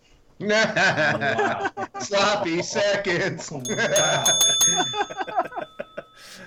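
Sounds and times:
laughter: 0:00.4 - 0:06.4
speech: 0:00.4 - 0:06.4
bell ringing: 0:03.6 - 0:06.4.

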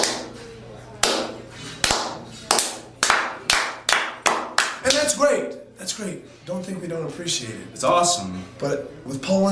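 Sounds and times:
sharp hand claps imitating wrestling fans: 0:00.0 - 0:00.4, 0:01.0 - 0:05.2
speech: 0:05.8 - 0:09.5.

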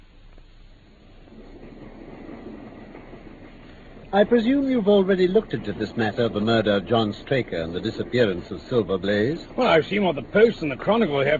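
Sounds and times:
steam train running on rails: 0:00.0 - 0:11.3
steam train wheels clattering on rails: 0:01.0 - 0:11.3
speech: 0:04.1 - 0:11.3.

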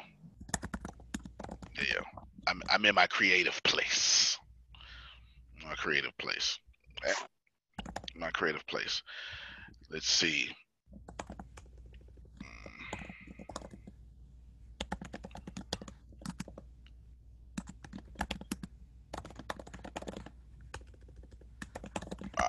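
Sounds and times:
typing on a computer keyboard: 0:00.4 - 0:01.8, 0:07.8 - 0:08.2, 0:11.0 - 0:14.0, 0:14.8 - 0:16.7, 0:17.6 - 0:22.4
speech: 0:02.8 - 0:04.4, 0:05.8 - 0:07.3, 0:08.2 - 0:11.0.

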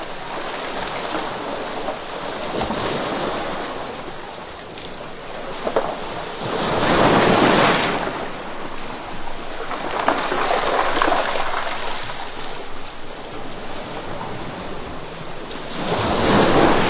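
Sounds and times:
turbulent waves beating against rocks: 0:00.0 - 0:16.8
stones falling back with the waves: 0:07.0 - 0:13.1.

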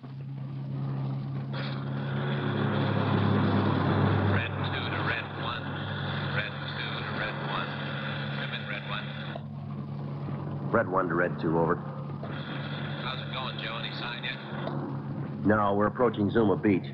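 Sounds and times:
car engine drone cruising along the Pacific Coast Highway: 0:00.0 - 0:16.9
road rumble: 0:00.0 - 0:16.9
voices: 0:01.5 - 0:16.9
speech: 0:10.8 - 0:11.9, 0:15.5 - 0:16.9.

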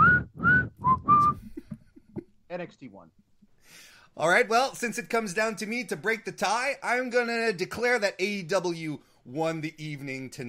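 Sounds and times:
person whistling a tune close to the microphone: 0:00.0 - 0:01.7
speech: 0:02.6 - 0:10.4.

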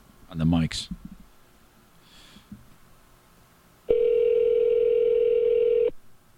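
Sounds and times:
quiet noise: 0:00.0 - 0:06.3
speech: 0:00.3 - 0:01.1
phone line ringback tone while calling a cell phone: 0:03.9 - 0:05.9.

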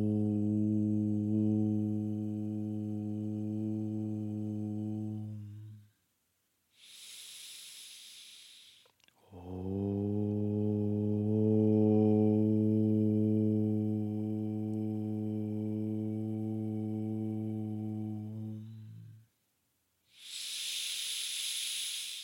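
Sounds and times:
voices chanting in a group toning exercise: 0:00.0 - 0:05.8, 0:07.8 - 0:19.2
breathy hiss: 0:06.7 - 0:09.5, 0:20.1 - 0:22.2.

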